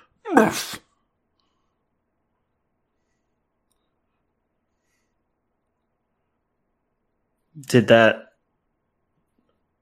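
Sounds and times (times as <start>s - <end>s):
person's short cry of pain from outside: 0.3s - 0.8s
speech: 0.3s - 0.8s, 7.6s - 8.3s.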